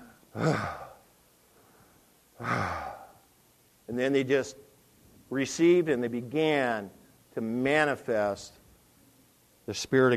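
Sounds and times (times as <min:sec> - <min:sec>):
speech: 0:00.4 - 0:00.8, 0:02.4 - 0:02.8, 0:03.9 - 0:04.7, 0:05.3 - 0:08.6, 0:09.7 - 0:10.1
person blowing air out forcefully to imitate rushing wind: 0:00.4 - 0:01.0, 0:02.4 - 0:03.2.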